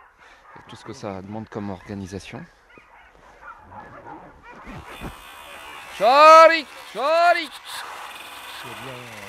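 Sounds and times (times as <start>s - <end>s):
pack of sled dogs barking and yipping excitedly: 0.0s - 8.6s
speech: 0.6s - 2.6s, 6.0s - 7.9s, 8.6s - 9.2s
sled dogs whining: 2.7s - 5.2s.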